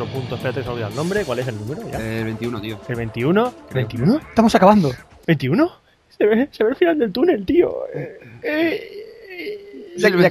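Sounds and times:
speech: 0.0 - 10.3
man letting out a mock whimpering cry: 7.8 - 10.2.

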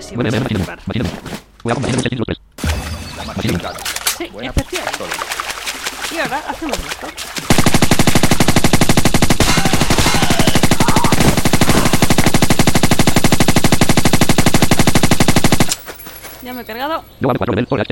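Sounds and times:
speech: 0.0 - 2.4, 3.4 - 8.6, 16.5 - 17.8
machine gun firing in a video game: 7.5 - 15.9.

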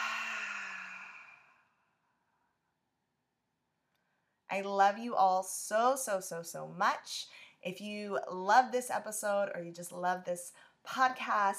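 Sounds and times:
audible exhale through an open mouth: 0.0 - 1.7
speech: 4.5 - 11.5.

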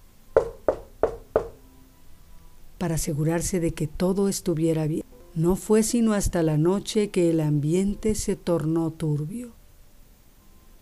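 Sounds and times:
knocking on a wooden door of a seminarian's room: 0.4 - 1.6
speech: 2.8 - 9.6.

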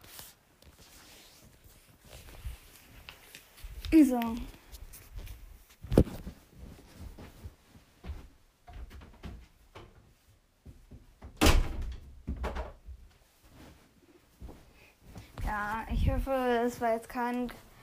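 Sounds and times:
shuffling and handling noises: 0.0 - 11.1, 13.0 - 17.8
speech: 3.9 - 4.6, 16.2 - 17.7
door pushed shut with a solid thud: 11.2 - 12.8.

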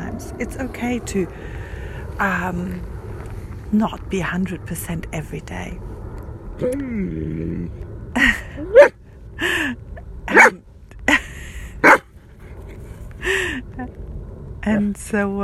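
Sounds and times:
speech: 0.2 - 1.6, 2.2 - 2.9, 3.7 - 5.9, 6.6 - 10.6, 14.6 - 15.4
male dog high wavering whine or yelp: 8.6 - 9.0, 10.3 - 10.5
male dog barking: 8.7 - 8.9, 10.3 - 10.6, 11.8 - 12.0.

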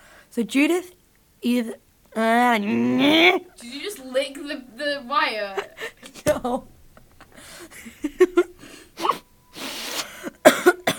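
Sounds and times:
speech: 0.4 - 6.7
deliberate forced cough: 10.2 - 10.9.

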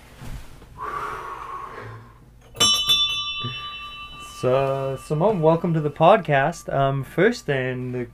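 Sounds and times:
ship's bell ringing: 2.4 - 7.9
speech: 4.4 - 8.1.

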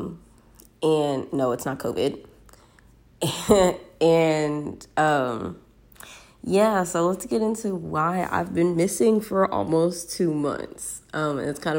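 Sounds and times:
speech: 0.8 - 2.3, 3.2 - 11.7
sick speaker coughing: 3.2 - 3.9.

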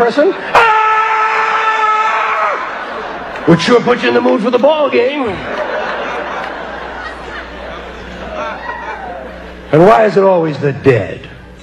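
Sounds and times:
speech: 0.0 - 0.8, 3.4 - 5.6, 9.7 - 11.3
person screaming: 0.5 - 2.7
laughter: 2.4 - 9.7.

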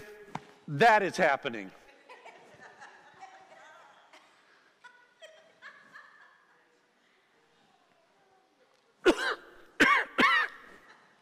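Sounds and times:
speech: 0.7 - 1.8
laughter: 1.8 - 7.0, 10.6 - 11.2
person coughing and clearing throat: 9.0 - 10.8.

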